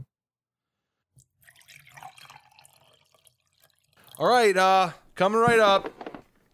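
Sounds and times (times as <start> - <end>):
water running from a tap into a bowl: 1.4 - 4.3
speech: 4.2 - 6.0.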